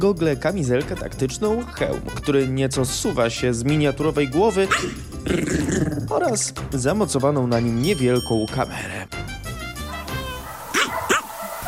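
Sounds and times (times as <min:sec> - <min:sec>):
speech: 0:00.0 - 0:09.2
small dog yipping: 0:04.7 - 0:05.0, 0:10.0 - 0:11.6.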